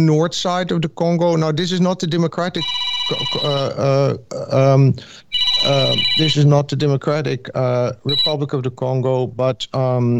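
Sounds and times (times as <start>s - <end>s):
speech: 0.0s - 10.1s
mobile phone ringing with short high electronic tones: 2.6s - 3.9s, 5.3s - 6.5s, 8.1s - 8.4s.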